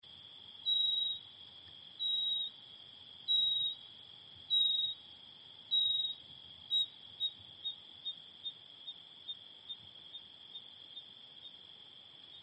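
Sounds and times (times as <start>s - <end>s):
Nothura minor calling: 2.0s - 2.6s, 3.3s - 3.8s, 4.5s - 5.0s, 5.7s - 11.6s.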